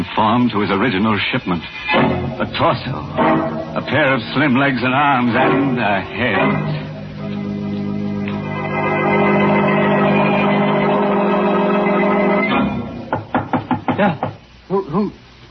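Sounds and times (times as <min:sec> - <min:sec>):
speech: 0:00.2 - 0:06.8
droning musical swell: 0:01.9 - 0:13.1
knocking on an alley door: 0:13.1 - 0:14.4.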